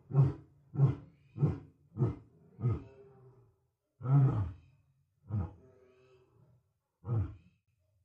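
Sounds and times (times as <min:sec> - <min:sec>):
lion roaring and grunting: 0:00.0 - 0:03.1, 0:04.0 - 0:04.6, 0:05.2 - 0:06.1, 0:07.0 - 0:07.5.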